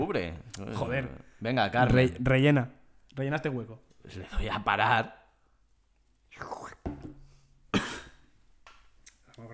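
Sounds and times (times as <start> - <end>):
speech: 0.0 - 5.2, 6.4 - 6.8
throaty noises: 6.3 - 7.3
ill man coughing harshly: 7.7 - 8.3.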